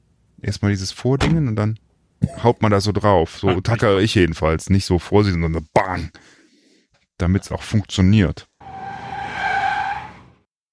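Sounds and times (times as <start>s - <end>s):
speech: 0.4s - 6.4s, 7.2s - 8.5s
car tires squealing while drifting: 8.6s - 10.5s.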